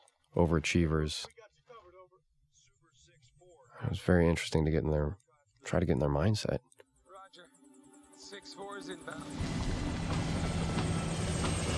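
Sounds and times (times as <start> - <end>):
speech: 0.4 - 1.4, 3.8 - 6.7, 8.3 - 10.2
helicopter in flight: 8.6 - 11.7.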